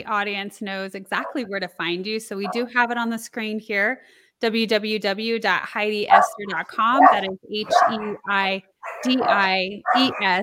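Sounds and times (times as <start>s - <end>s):
speech: 0.0s - 10.4s
puppies barking and yipping: 1.2s - 1.5s, 2.4s - 2.8s, 6.1s - 10.4s.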